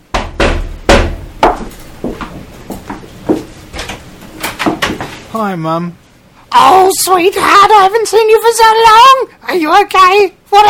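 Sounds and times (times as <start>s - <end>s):
sharp knocks on a door: 0.1s - 2.3s
speech: 5.3s - 6.0s, 6.6s - 10.6s.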